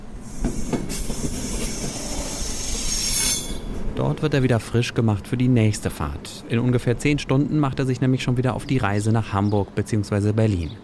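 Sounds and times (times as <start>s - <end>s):
night train with sleeping and couchette cars rumbling while shunted onto a siding: 0.0s - 8.8s
high-pitched train wheel squeal: 0.4s - 3.8s
speech: 4.0s - 10.8s.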